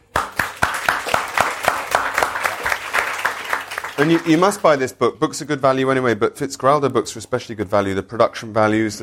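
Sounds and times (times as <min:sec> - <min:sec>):
small audience applause: 0:00.0 - 0:04.8
speech: 0:04.0 - 0:09.0.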